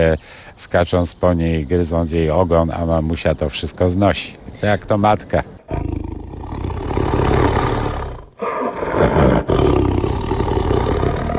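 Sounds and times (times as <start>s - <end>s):
speech: 0.0s - 5.9s
Sumatran tiger roaring: 5.7s - 11.3s.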